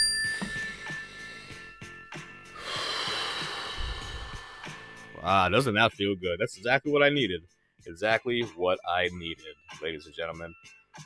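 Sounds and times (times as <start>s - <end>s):
bell ringing: 0.0s - 1.5s
group taking a deep breath: 2.5s - 5.1s
speech: 5.2s - 11.0s.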